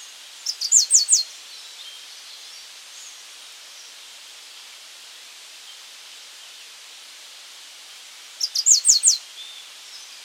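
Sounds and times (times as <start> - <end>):
yellow-striped brushfinch song of thin downslurred notes: 0.0 - 3.2, 8.4 - 10.2
steady background hiss: 0.0 - 10.2.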